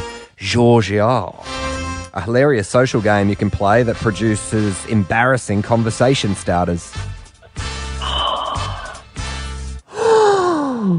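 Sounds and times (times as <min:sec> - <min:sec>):
speech: 0:00.4 - 0:01.5, 0:02.1 - 0:07.7
quiz contestant inhaling deeply with groan-like tones: 0:07.5 - 0:10.9.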